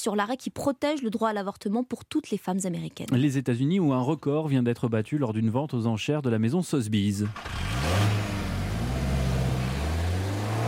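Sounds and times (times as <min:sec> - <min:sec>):
speech: 0:00.0 - 0:08.2
car engine revving: 0:07.2 - 0:10.6.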